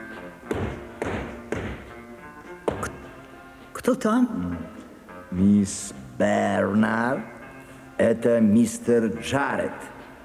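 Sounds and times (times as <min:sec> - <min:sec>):
hiss: 0:00.0 - 0:10.2
knocking on the door of a train sleeping compartment at night: 0:00.5 - 0:01.9, 0:02.7 - 0:03.0
speech: 0:03.9 - 0:04.7, 0:05.3 - 0:07.3, 0:08.0 - 0:09.9.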